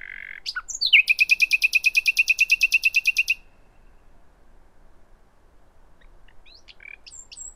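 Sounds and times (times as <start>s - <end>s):
common nightingale Luscinia megarhynchos singing: 0.0s - 4.2s, 6.0s - 7.5s.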